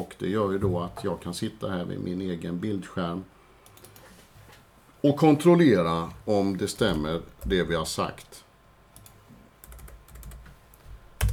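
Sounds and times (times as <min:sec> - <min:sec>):
speech: 0:00.0 - 0:03.4, 0:05.0 - 0:08.4
computer keyboard typing: 0:03.7 - 0:04.0, 0:09.0 - 0:10.5.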